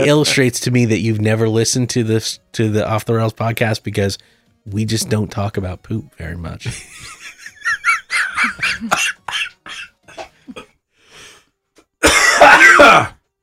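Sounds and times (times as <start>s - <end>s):
speech: 0.0s - 7.8s, 8.4s - 9.5s, 12.8s - 13.1s
laughter: 6.7s - 9.9s
person coughing harshly: 8.7s - 10.7s, 12.0s - 13.2s
raspy throat clearing: 10.1s - 10.7s.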